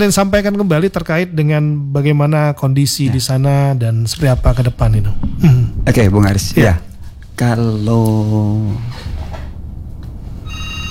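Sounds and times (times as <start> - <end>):
speech: 0.0 - 9.1
low hum: 0.0 - 10.8
short steady electronic telephone tone: 10.4 - 10.8
telephone ringing with an incoming call: 10.4 - 10.8.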